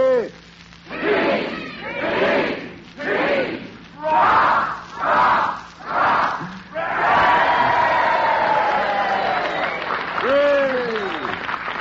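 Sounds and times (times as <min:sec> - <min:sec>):
group of voices shouting a rhythmic chant: 0:00.9 - 0:09.0
group cheering and yelling excitedly: 0:00.9 - 0:11.3.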